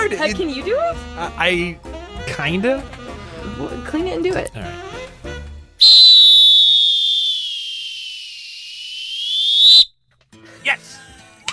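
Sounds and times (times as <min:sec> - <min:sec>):
speech: 0:00.1 - 0:04.9
lifeguard whistle blown in a long shrill blast: 0:05.8 - 0:09.9.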